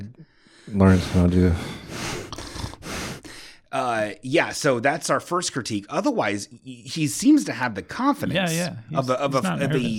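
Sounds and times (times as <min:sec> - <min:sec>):
heavy breathing into a microphone: 0:00.2 - 0:03.7
speech: 0:00.7 - 0:01.8, 0:03.8 - 0:09.9.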